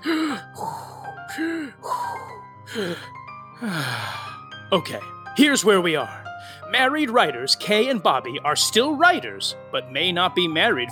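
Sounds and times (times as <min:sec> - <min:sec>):
deep deliberate breathing exercises: 0:00.0 - 0:04.5, 0:06.3 - 0:06.7
speech: 0:02.8 - 0:10.9.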